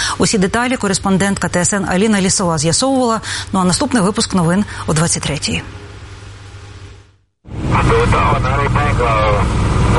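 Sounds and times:
speech: 0.2s - 5.8s
military aircraft engine roar: 7.5s - 9.9s.

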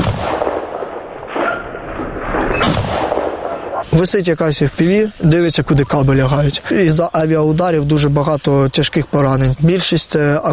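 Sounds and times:
gunfire aimed at a hovering drone: 0.0s - 3.8s
speech: 3.9s - 10.5s.

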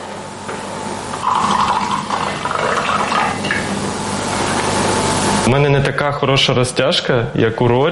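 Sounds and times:
low constant hum: 0.0s - 7.9s
juice pouring into a cup in a gurgling stream: 1.2s - 3.4s
speech: 5.5s - 7.9s.

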